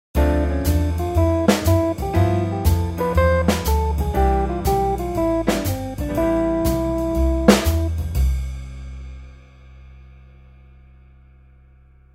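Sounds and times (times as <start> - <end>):
musical scale: 0.2 - 8.0.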